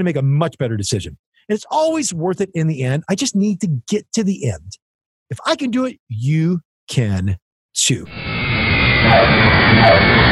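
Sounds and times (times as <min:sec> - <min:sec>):
speech: 0:00.0 - 0:08.3, 0:09.0 - 0:10.3
jet airplane engines roaring while landing: 0:08.0 - 0:10.3.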